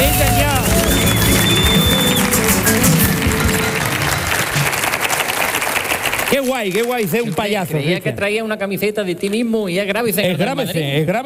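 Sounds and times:
cheering: 0.0s - 7.0s
large audience applauding loudly: 0.0s - 7.6s
speech: 6.6s - 11.2s.

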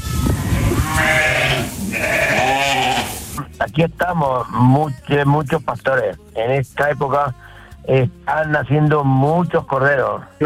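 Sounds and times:
sheep bleating: 0.0s - 3.4s
speech: 3.8s - 10.4s.

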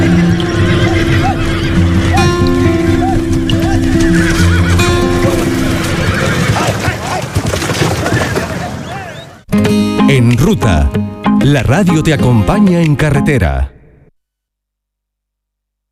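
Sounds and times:
horse hooves clopping: 0.0s - 9.4s
horses whinnying: 0.0s - 9.4s
speech: 10.5s - 13.7s.

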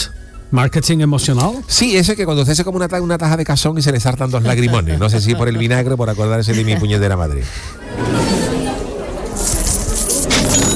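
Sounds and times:
speech: 0.5s - 8.5s
laughter: 4.1s - 9.7s
coins, chains and tableware clinking as they are dumped out of chests: 9.3s - 10.7s.

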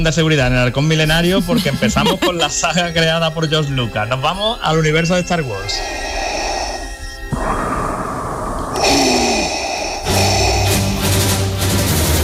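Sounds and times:
speech: 0.0s - 6.3s
laughter: 1.2s - 3.1s
mechanical respirator breathing: 5.5s - 12.2s.

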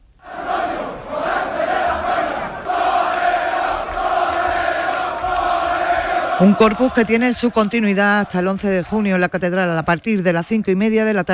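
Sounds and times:
crowd cheering and shouting as a matador is carried on shoulders after a bullfight: 0.2s - 9.1s
speech: 6.4s - 11.3s.

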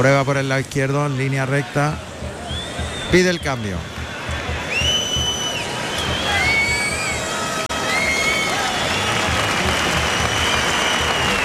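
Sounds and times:
speech: 0.0s - 2.1s, 3.1s - 3.9s
large crowd in a bullring applauding a picador's horse: 1.2s - 11.4s
faint whistles from the stands: 2.4s - 4.0s, 4.6s - 9.4s, 10.0s - 11.4s.

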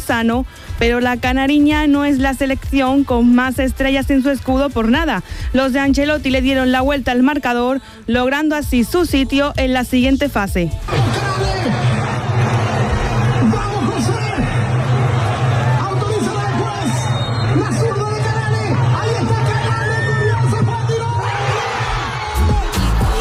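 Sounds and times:
speech: 0.1s - 11.8s
Paraguayan football fans cheering and shouting in celebration: 10.9s - 23.1s.

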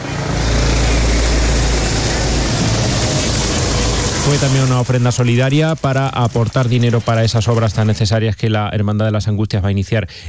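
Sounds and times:
helicopter engine roar passing overhead: 0.0s - 8.0s
speech: 4.3s - 10.2s.

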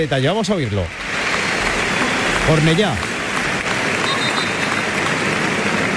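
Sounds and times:
speech: 0.0s - 1.1s, 2.4s - 3.1s
large stadium crowd applauding: 0.0s - 5.9s.

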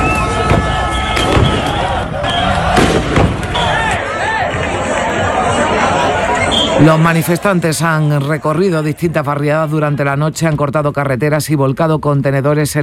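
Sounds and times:
constant roar of an agitated crowd: 0.0s - 10.2s
voices shouting and chattering: 0.0s - 10.9s
police warning gunshot-like bangs: 2.7s - 3.6s
speech: 6.8s - 12.8s.

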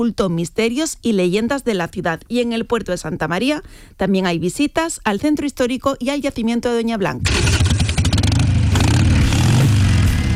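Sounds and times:
speech: 0.0s - 7.9s
Harley-Davidson motorcycle engine revving: 7.2s - 10.3s.

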